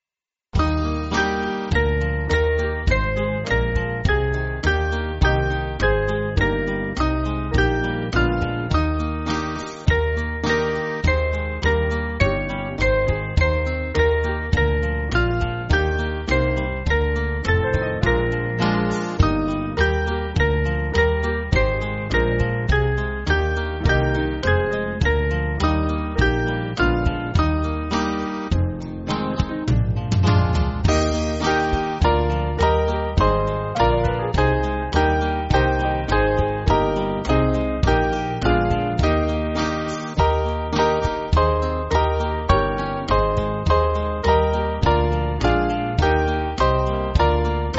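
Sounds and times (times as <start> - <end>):
small band playing church backing music: 0.6 - 47.7.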